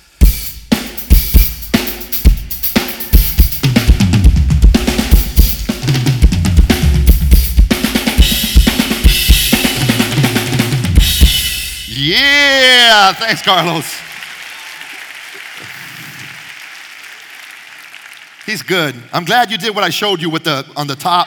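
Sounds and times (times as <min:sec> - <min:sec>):
drum kit played in a steady groove: 0:00.0 - 0:12.7
speech: 0:13.1 - 0:14.0, 0:18.5 - 0:21.2.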